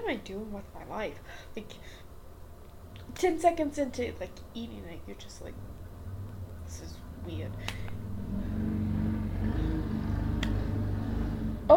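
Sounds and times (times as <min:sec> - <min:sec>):
speech: 0:00.0 - 0:02.1, 0:03.1 - 0:05.8, 0:06.7 - 0:08.5
motorcycle engine rumbling as it passes: 0:05.5 - 0:11.7.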